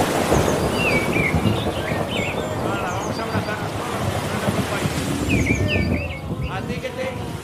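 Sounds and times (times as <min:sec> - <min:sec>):
birds chirping and warbling: 0:00.0 - 0:07.3
low rumble of thunder: 0:00.0 - 0:07.4
rain: 0:00.0 - 0:07.4.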